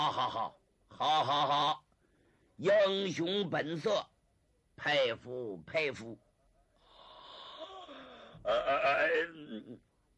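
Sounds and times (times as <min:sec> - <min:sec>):
speech: 0:00.0 - 0:01.9, 0:02.6 - 0:04.1, 0:04.8 - 0:06.2, 0:08.4 - 0:09.8
male storyteller imitating a yawn: 0:06.9 - 0:09.8.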